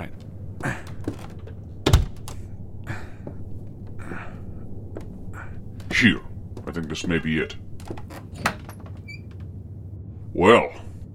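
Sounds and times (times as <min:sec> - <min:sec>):
door hinges squeaking: 0:00.0 - 0:02.5, 0:04.9 - 0:09.6
door off a hallway creaking open: 0:00.0 - 0:02.5, 0:05.0 - 0:09.6
speech: 0:06.0 - 0:08.0, 0:10.4 - 0:10.8.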